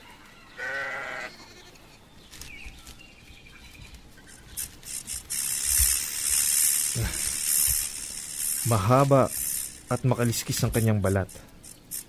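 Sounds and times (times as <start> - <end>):
sheep bleating: 0.6 - 1.8
hissing spray noise: 4.4 - 12.0
speech: 8.7 - 11.5.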